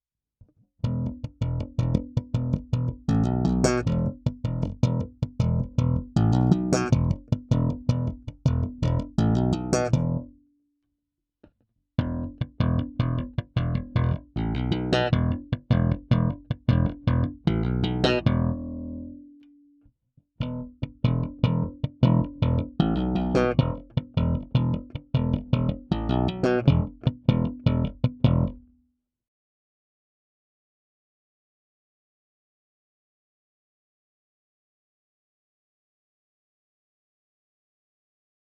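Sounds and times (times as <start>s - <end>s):
slap bass guitar: 0.8s - 10.4s, 12.0s - 19.3s, 20.4s - 28.7s.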